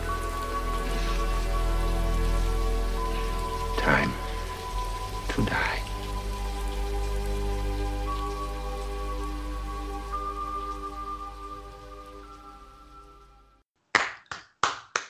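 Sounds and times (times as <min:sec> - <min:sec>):
sustained rain-soaked musical drone: 0:00.0 - 0:13.6
one person clapping hands: 0:13.9 - 0:15.0.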